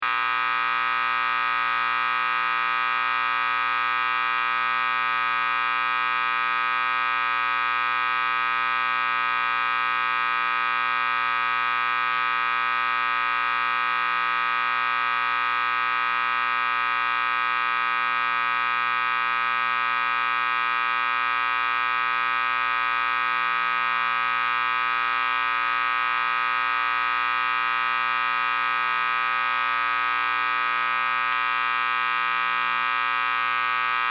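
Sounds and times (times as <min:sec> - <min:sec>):
constant static electricity buzz from a guitar amp: 0:00.0 - 0:34.0.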